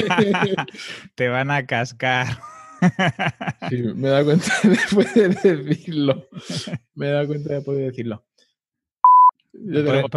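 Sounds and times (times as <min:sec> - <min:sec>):
laughter: 0:00.0 - 0:00.9, 0:02.2 - 0:07.0
speech: 0:00.0 - 0:08.3, 0:09.5 - 0:10.1
short steady censor bleep: 0:09.0 - 0:09.4.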